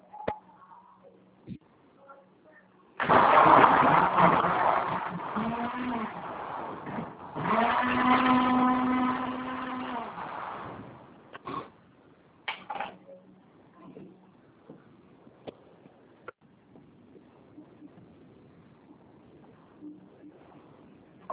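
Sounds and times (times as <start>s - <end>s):
kitchen blender running: 3.0s - 10.9s.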